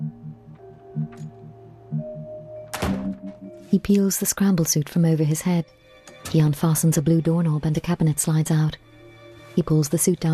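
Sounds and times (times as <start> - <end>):
steady pulsing low electronic hum: 0.0 - 2.6
door off a corridor thudding shut: 2.7 - 3.4
speech: 3.7 - 8.8, 9.6 - 10.3.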